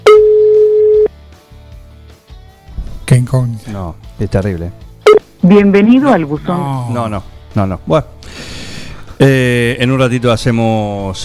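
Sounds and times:
telephone ringback tone while a call waits for an answer: 0.0 - 1.1
speech: 3.3 - 8.4, 9.2 - 11.2.

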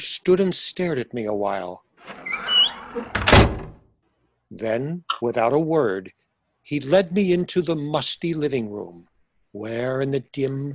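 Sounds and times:
speech: 0.0 - 2.3, 2.9 - 3.5, 4.5 - 10.7
door creaking open on a squeaky hinge: 2.0 - 3.8.

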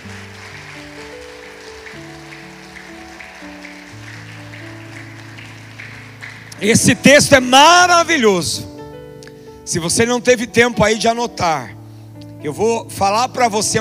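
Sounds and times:
crowd clapping: 0.0 - 7.6
sustained keyboard chords: 0.0 - 13.7
speech: 6.6 - 8.7, 9.7 - 11.8, 12.4 - 13.7.

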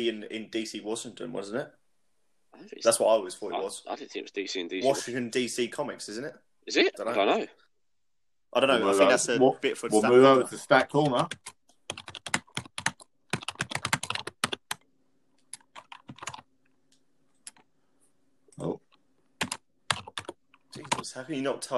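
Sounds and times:
speech: 0.0 - 1.8, 2.5 - 7.6, 8.5 - 12.1, 21.2 - 21.7
fingers typing on a computer keyboard: 11.0 - 14.8, 15.5 - 16.5, 19.4 - 21.1.

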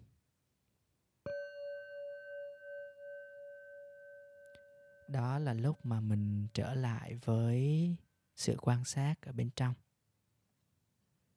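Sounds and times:
meditation bell ringing during yoga nidra practice: 1.3 - 6.2
speech: 5.1 - 9.8.

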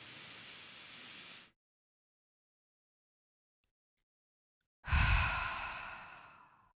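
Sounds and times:
person taking a deep breath in: 0.0 - 1.5, 4.9 - 6.7
person's long airy exhale: 0.0 - 1.6, 4.9 - 6.7.

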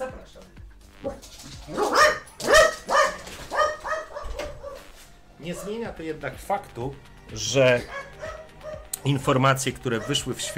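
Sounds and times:
speech: 0.3 - 2.0, 5.5 - 8.0, 9.0 - 10.5
dog barking: 1.1 - 5.9, 7.8 - 9.0, 9.9 - 10.5
dog whining yelps: 1.7 - 5.0, 5.6 - 5.8, 7.8 - 8.9, 10.0 - 10.5.

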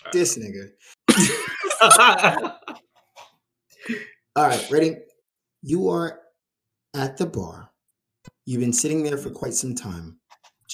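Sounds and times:
speech: 0.1 - 2.8, 3.9 - 6.2, 6.9 - 7.7, 8.5 - 10.7
rough gravelly throat-clearing cough: 1.1 - 2.4
laughter: 1.1 - 2.8.

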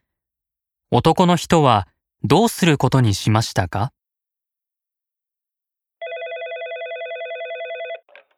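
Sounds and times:
speech: 0.9 - 4.0
telephone ringing with a warbling electronic tone: 6.0 - 8.2.

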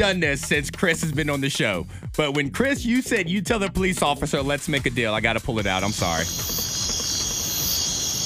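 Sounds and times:
speech: 0.0 - 6.7
crickets chirping: 5.7 - 8.2.

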